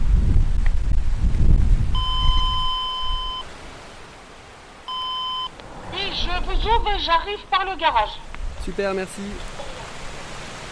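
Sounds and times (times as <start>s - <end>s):
low wind rumble: 0.0s - 10.6s
electronic buzzer of a doorbell or intercom at a gate: 2.0s - 3.4s, 4.9s - 5.5s
speech: 6.7s - 9.6s.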